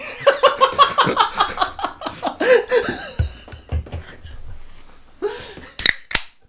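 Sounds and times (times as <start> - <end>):
people laughing and chattering: 0.0 - 4.5.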